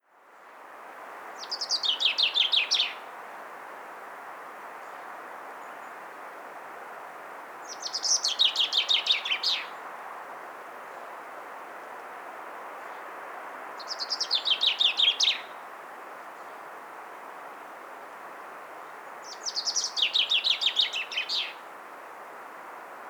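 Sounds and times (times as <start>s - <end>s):
common chaffinch Fringilla coelebs singing: 1.4s - 3.0s, 7.6s - 9.8s, 13.8s - 15.6s, 19.2s - 21.6s.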